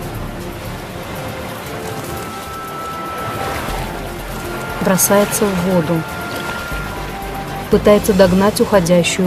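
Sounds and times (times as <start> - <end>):
rough churning sea waves surging: 0.0 - 9.2
speech: 4.8 - 6.2, 7.7 - 9.2.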